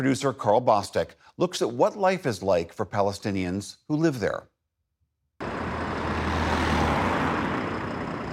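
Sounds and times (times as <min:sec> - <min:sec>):
speech: 0:00.0 - 0:04.5
bus engine idling while loading passengers: 0:05.4 - 0:08.3.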